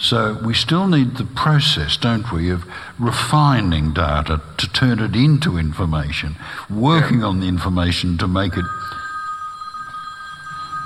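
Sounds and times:
speech: 0:00.1 - 0:08.8
mobile phone ringing with a high electronic tone: 0:08.4 - 0:10.8.

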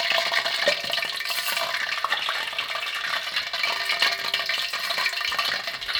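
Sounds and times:
basil leaves deep frying in hot oil: 0:00.0 - 0:05.9.

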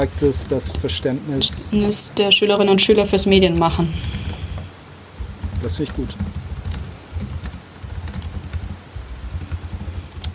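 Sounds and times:
speech: 0:00.0 - 0:04.2, 0:05.6 - 0:06.4
low hum: 0:00.0 - 0:10.3
typing on a computer keyboard: 0:03.5 - 0:10.3.

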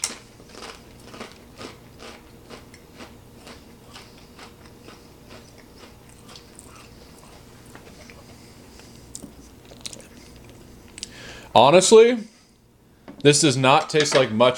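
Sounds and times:
biting into and chewing rubbery luncheon loaf with congealed fat: 0:00.0 - 0:11.1
speech: 0:11.6 - 0:12.3, 0:13.2 - 0:14.5.

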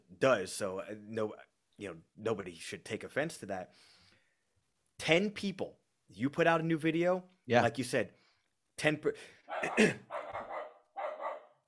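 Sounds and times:
speech: 0:00.2 - 0:04.0, 0:05.0 - 0:08.2, 0:08.8 - 0:10.1
German Shepherd dog hacking coughs: 0:09.5 - 0:11.4
German Shepherd dog barking: 0:09.5 - 0:11.6.

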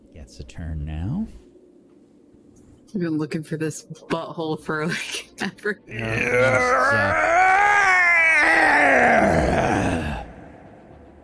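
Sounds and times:
speech: 0:00.3 - 0:01.4, 0:02.9 - 0:07.4, 0:08.4 - 0:10.0
creature yell echoing through a cavern: 0:05.9 - 0:10.6.

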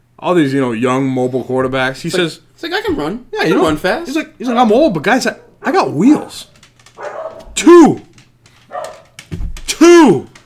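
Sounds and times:
speech: 0:00.2 - 0:08.1, 0:09.8 - 0:10.4
loud dog bark with a yowling tone: 0:07.0 - 0:07.6, 0:08.7 - 0:09.2.

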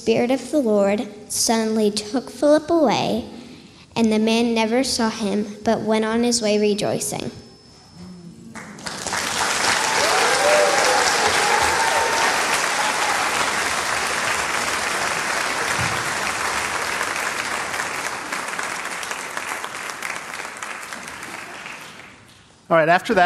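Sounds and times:
speech: 0:00.0 - 0:03.4, 0:04.0 - 0:07.4, 0:22.7 - 0:23.2
applause from a large audience: 0:08.6 - 0:22.3.

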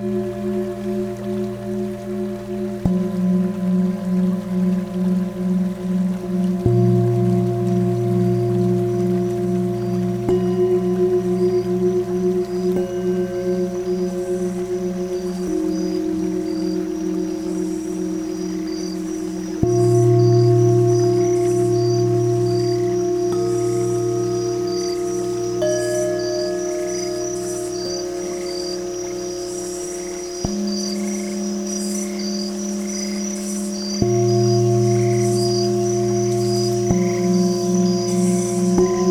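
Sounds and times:
singing bowl tuned near 234 hertz ringing: 0:00.0 - 0:39.0.

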